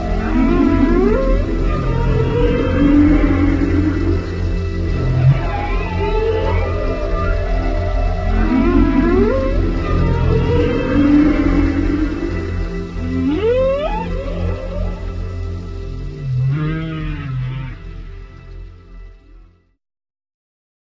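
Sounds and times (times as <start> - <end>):
whale calls: 0.0 - 18.7
steady low rumbling noise: 0.0 - 19.5.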